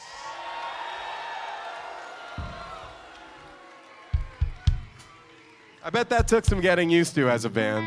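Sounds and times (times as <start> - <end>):
crowd cheering and whooping for a band: 0.0 - 6.2
speech: 5.8 - 7.8.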